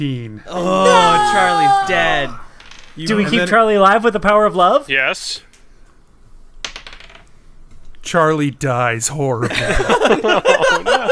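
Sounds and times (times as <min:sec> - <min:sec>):
speech: 0:00.0 - 0:02.4, 0:03.0 - 0:05.5, 0:08.1 - 0:11.1
dice clattering across a hard surface: 0:06.6 - 0:07.3
laughter: 0:09.4 - 0:11.1.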